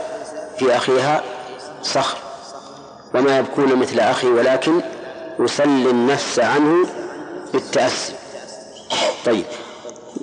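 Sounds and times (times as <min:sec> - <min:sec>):
speech: 0:00.6 - 0:02.2, 0:03.1 - 0:08.2, 0:09.2 - 0:09.6
sneeze: 0:08.9 - 0:09.3.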